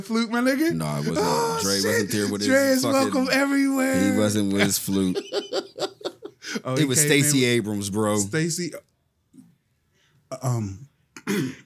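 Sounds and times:
speech: 0:00.0 - 0:05.9, 0:06.5 - 0:08.9, 0:10.3 - 0:11.6
laughter: 0:00.7 - 0:07.4
person clearing throat: 0:11.2 - 0:11.6.

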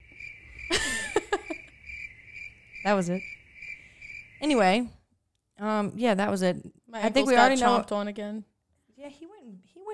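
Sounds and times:
crickets chirping in a high-pitched trill: 0:00.0 - 0:06.4
speech: 0:02.8 - 0:03.4, 0:04.4 - 0:05.0, 0:05.6 - 0:09.9.

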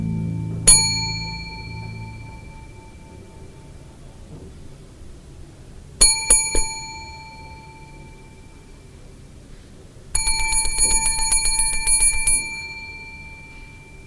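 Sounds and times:
bell on a front-desk counter being struck: 0:00.0 - 0:03.7, 0:06.0 - 0:08.9, 0:10.2 - 0:14.0.

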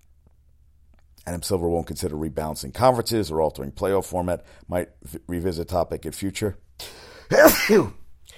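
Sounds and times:
speech: 0:01.3 - 0:08.0
person sneezing: 0:06.8 - 0:08.3.

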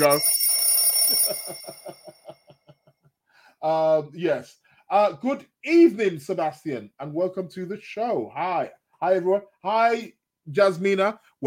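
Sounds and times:
speech: 0:00.0 - 0:00.4, 0:03.6 - 0:11.4
mechanical alarm clock bell ringing: 0:00.0 - 0:02.9.

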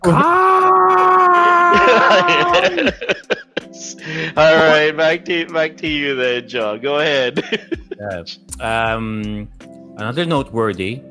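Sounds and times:
speech: 0:00.0 - 0:00.4, 0:01.9 - 0:11.0
person mock screaming: 0:00.0 - 0:03.1
short choppy laughter-like bursts from a person: 0:01.2 - 0:04.9, 0:07.3 - 0:08.0.

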